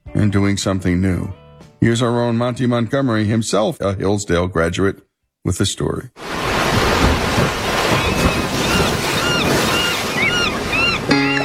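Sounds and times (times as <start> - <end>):
speech: 0.2 - 6.5
ocean waves and surf: 6.2 - 11.4
wind buffeting the microphone: 6.3 - 11.1
gull-like chirps overhead: 8.0 - 11.4.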